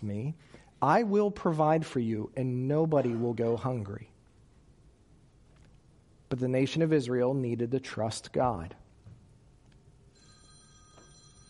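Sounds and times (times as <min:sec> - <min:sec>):
speech: 0:00.0 - 0:04.1, 0:06.3 - 0:08.8
phone ringtone: 0:10.1 - 0:11.4.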